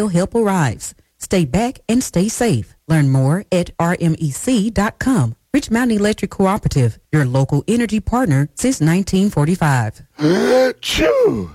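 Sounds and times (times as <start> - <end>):
speech: 0.0 - 11.5
exaggerated voiced sneeze from spring allergies: 10.2 - 11.5.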